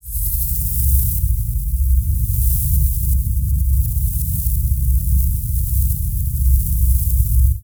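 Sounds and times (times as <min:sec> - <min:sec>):
dark hissing rumbling ambience: 0:00.0 - 0:07.6.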